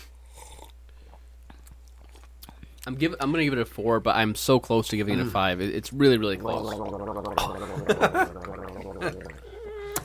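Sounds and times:
speech: 0:02.8 - 0:09.3
person slurping and gurgling a drink to aerate it while tasting: 0:06.1 - 0:10.0.

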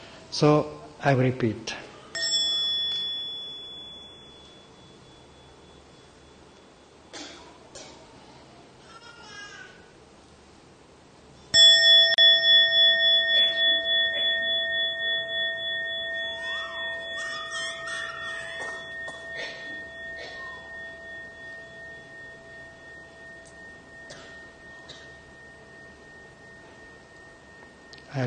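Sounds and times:
speech: 0:00.4 - 0:01.8
mindfulness bell being struck: 0:02.1 - 0:07.1, 0:11.6 - 0:28.2.

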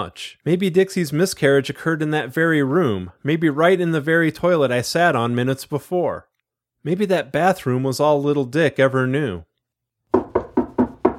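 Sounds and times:
speech: 0:00.0 - 0:09.5
firm knocking on a door: 0:10.1 - 0:11.1.

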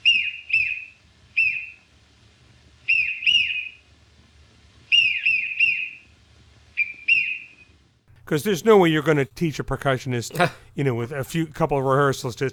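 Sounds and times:
swallowed whistle tooting with each hiccup: 0:00.0 - 0:01.9, 0:02.9 - 0:03.8, 0:04.9 - 0:06.1, 0:06.8 - 0:07.8
speech: 0:08.3 - 0:12.5.

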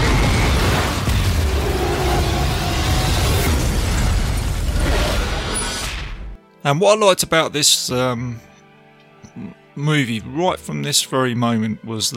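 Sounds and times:
train explosion with crackling debris: 0:00.0 - 0:06.4
speech: 0:06.6 - 0:08.5, 0:09.3 - 0:12.1.

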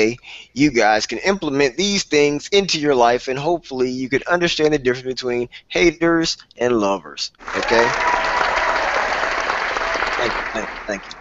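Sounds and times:
speech: 0:00.0 - 0:08.4, 0:10.2 - 0:11.1
sizable audience applause: 0:07.4 - 0:11.1.

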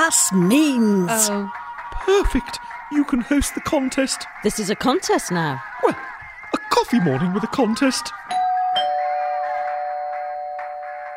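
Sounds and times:
speech: 0:00.1 - 0:06.1, 0:06.7 - 0:08.2
front door bell ringing: 0:08.3 - 0:11.1.

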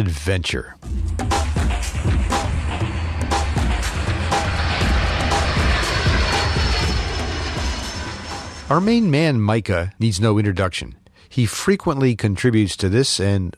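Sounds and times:
speech: 0:00.1 - 0:01.0, 0:08.7 - 0:13.5
seaplane engine in flight: 0:01.1 - 0:09.2.

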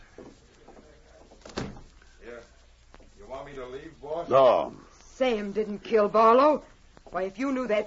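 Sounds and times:
faint room murmur: 0:00.0 - 0:07.8
door shutting with a solid thud: 0:01.4 - 0:01.9
speech: 0:03.5 - 0:07.8.

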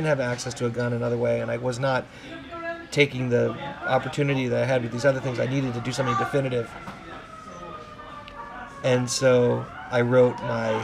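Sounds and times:
speech: 0:00.0 - 0:07.0, 0:08.8 - 0:10.8
steady noise: 0:00.0 - 0:10.8
emergency sirens passing outside: 0:03.5 - 0:10.8.

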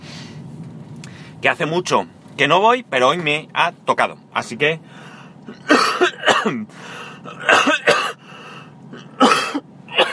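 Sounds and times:
speech: 0:01.4 - 0:07.8
person coughing: 0:05.5 - 0:08.2, 0:09.0 - 0:10.1.

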